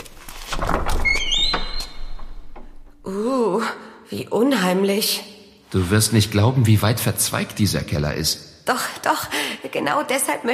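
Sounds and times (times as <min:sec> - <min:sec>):
cellar door hinge squealing creak: 0:00.0 - 0:03.1
cellar door opening with a dull thunk and rattle: 0:00.3 - 0:03.0
speech: 0:03.1 - 0:10.5.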